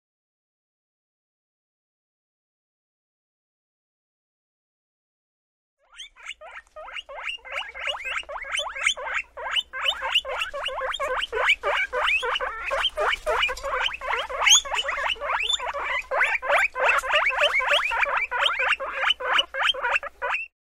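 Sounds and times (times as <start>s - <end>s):
domestic guinea pig: 5.8s - 20.6s.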